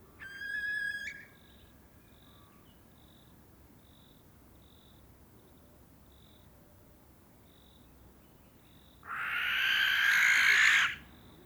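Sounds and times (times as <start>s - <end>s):
common barn owl grating screech in courtship flight: 9.1s - 11.0s.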